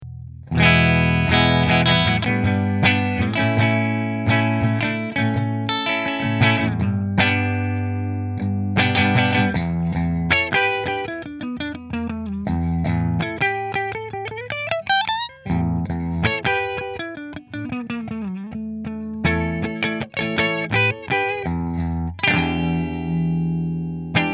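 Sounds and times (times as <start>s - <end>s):
Fender electric guitars: 0.0s - 24.3s.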